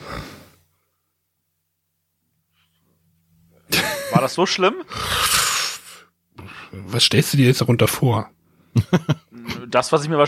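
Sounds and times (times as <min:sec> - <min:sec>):
laughter: 0:03.7 - 0:04.9, 0:08.8 - 0:09.7
speech: 0:04.2 - 0:05.4, 0:06.9 - 0:10.2
person yawning with a breathy drawn-out exhale: 0:04.9 - 0:06.0
sudden loud burst of breath: 0:04.9 - 0:06.6.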